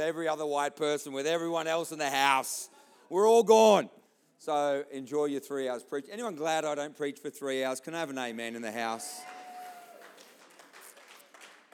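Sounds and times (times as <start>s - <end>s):
speech: 0.0s - 9.4s
church audience applauding during a sermon: 9.0s - 11.7s.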